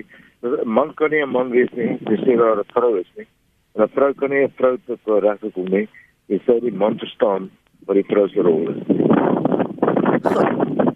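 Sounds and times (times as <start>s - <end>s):
speech: 0.0s - 9.4s, 10.3s - 10.7s
blustery wind buffeting a caller's microphone: 1.4s - 2.6s, 6.8s - 10.9s.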